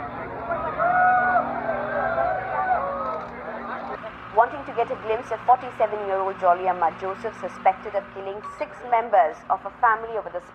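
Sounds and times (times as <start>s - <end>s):
raised cries from the crowd: 0.0s - 3.8s
crowd of hundreds outdoors booing, shouting and jeering in rural Kozhikode: 0.0s - 4.0s
speech: 4.7s - 10.5s.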